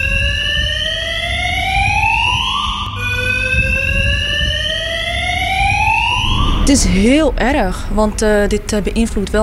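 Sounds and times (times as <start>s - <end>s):
garage fire alarm wailing with a sweeping electronic tone: 0.0s - 7.5s
low rumble: 0.0s - 9.4s
speech: 6.7s - 9.4s.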